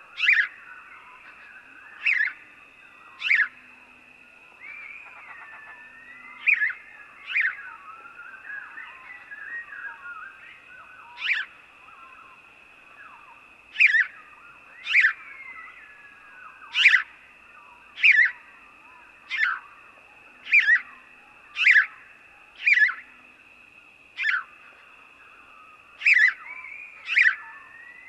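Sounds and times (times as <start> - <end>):
faint steady whine: 0.0 - 28.0
house sparrow uttering sharp emphatic chirps: 0.2 - 0.5, 1.2 - 2.4, 3.2 - 3.5, 13.7 - 14.2, 14.8 - 15.2, 16.7 - 17.1, 18.0 - 18.4, 20.4 - 20.9, 21.6 - 21.9, 22.6 - 23.0, 24.2 - 24.5, 26.0 - 27.4.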